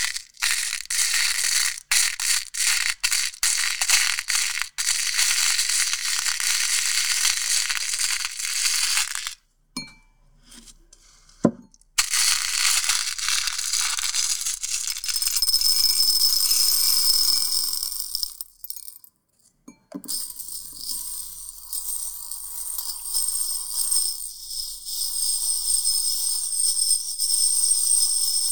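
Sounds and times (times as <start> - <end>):
beads swished and poured by hand: 0.0 - 9.4, 12.0 - 18.4.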